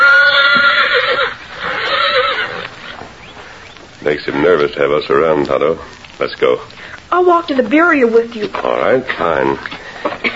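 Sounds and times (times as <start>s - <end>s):
colt with an injured nearly healed leg neighing: 0.0s - 3.0s
speech: 4.1s - 10.3s.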